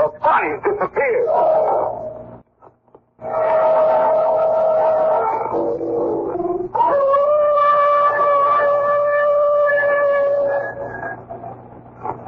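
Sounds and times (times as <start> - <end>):
speech: 0.1 - 2.1
hound dog howling in long drawn-out wails: 1.1 - 2.3, 3.2 - 11.4.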